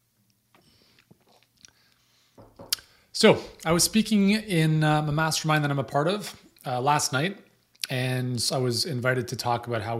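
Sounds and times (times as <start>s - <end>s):
person sipping a drink with soft slurps: 0.5s - 2.1s
speech: 3.2s - 9.9s.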